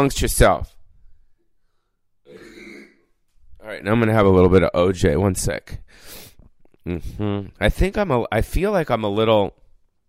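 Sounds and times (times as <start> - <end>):
speech: 0.0 - 0.7, 3.7 - 6.2, 6.8 - 9.6
loud raspy burp: 2.3 - 3.2.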